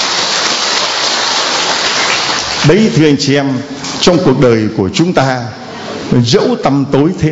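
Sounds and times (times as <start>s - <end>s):
large audience applauding: 0.0s - 3.0s
speech: 2.6s - 7.3s.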